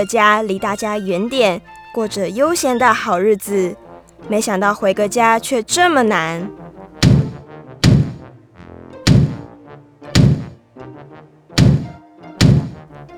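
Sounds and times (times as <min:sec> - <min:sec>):
speech: 0:00.0 - 0:06.6
tortoise tumbling down stairs with heavy hollow thuds: 0:07.0 - 0:08.3, 0:09.1 - 0:09.5, 0:10.2 - 0:10.6, 0:11.6 - 0:12.9.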